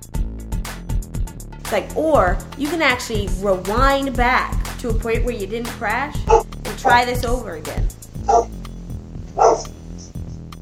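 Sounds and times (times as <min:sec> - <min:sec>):
speech: 0:01.7 - 0:08.6
dog barking: 0:08.3 - 0:08.5, 0:09.4 - 0:09.8.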